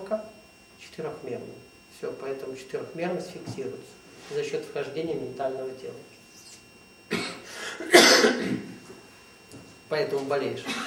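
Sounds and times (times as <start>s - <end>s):
speech: 0.9s - 6.2s, 9.9s - 10.8s
harsh breathy coughs: 7.1s - 8.8s, 10.6s - 10.8s.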